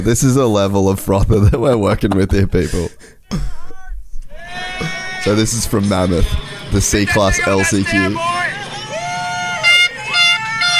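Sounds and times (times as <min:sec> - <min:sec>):
speech: 0:00.0 - 0:03.5, 0:04.8 - 0:08.5
laughter: 0:01.0 - 0:10.7
noisy crowd cheering and shouting at a race: 0:03.6 - 0:10.7
air horns blaring at a race: 0:04.4 - 0:10.7.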